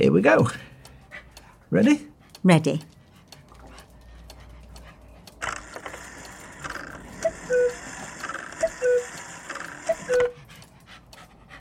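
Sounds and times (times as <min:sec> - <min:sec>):
speech: 0:00.0 - 0:00.7, 0:01.7 - 0:02.9
cuckoo clock mechanism whirring: 0:04.0 - 0:11.5
cuckoo clock two-note cuckoo calls: 0:07.2 - 0:07.9, 0:08.6 - 0:09.2, 0:09.9 - 0:10.4.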